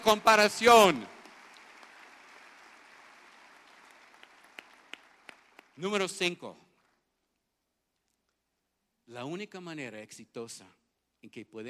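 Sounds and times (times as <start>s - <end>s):
speech: 0.0s - 1.1s, 5.8s - 6.6s, 9.1s - 11.6s
audience applauding: 0.0s - 7.0s.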